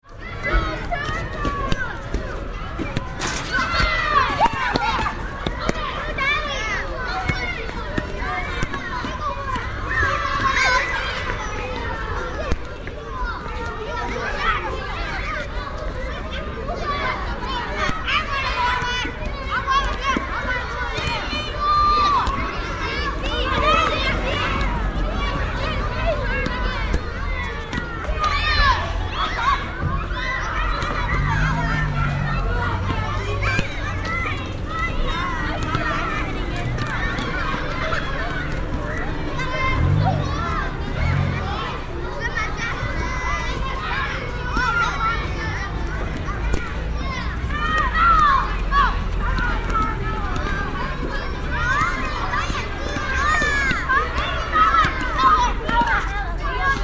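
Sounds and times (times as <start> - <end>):
playground: 0.0 - 56.8.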